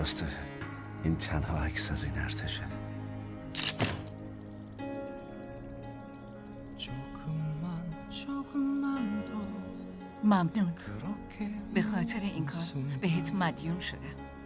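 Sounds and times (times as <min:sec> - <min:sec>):
speech: 0:00.0 - 0:00.4, 0:01.0 - 0:02.9, 0:10.3 - 0:14.3
steady tonal background: 0:00.0 - 0:14.4
camera shutter clicks while taking a photo: 0:03.5 - 0:04.2.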